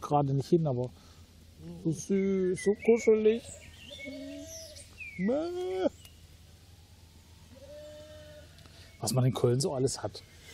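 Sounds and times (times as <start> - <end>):
faint birds chirping: 0.0 - 10.5
speech: 0.1 - 4.3, 5.2 - 6.0, 9.0 - 10.4
lamb bleating on meadows along the Rhine in Cologne Germany: 7.5 - 8.7.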